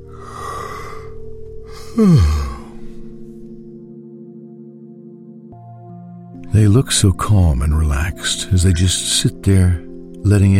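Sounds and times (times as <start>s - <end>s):
person yawning: 1.7s - 3.0s
speech: 2.0s - 2.4s, 6.6s - 10.5s.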